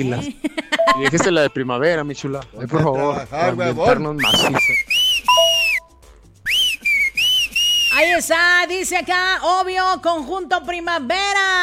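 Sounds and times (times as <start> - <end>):
speech: 0.0 - 4.9, 8.0 - 11.6
shrill whistles: 4.2 - 8.1.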